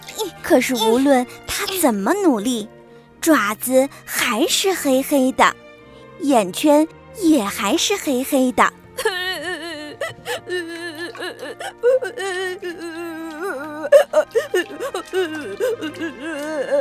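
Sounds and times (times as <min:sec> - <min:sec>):
little panda crying and whimpering: 0:00.0 - 0:01.9, 0:08.6 - 0:16.7
speech: 0:00.5 - 0:05.6, 0:06.2 - 0:09.2, 0:13.5 - 0:16.7.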